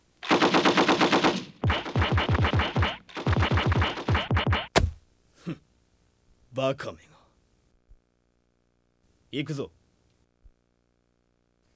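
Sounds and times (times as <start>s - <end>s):
machine-gun fire in long bursts: 0.2s - 5.0s
single sharp crack: 4.7s - 5.0s
speech: 6.6s - 7.1s, 9.3s - 9.8s.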